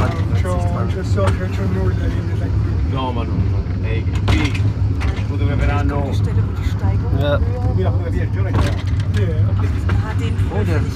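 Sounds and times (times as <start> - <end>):
car engine humming: 0.0 - 10.9
speech: 0.9 - 10.9.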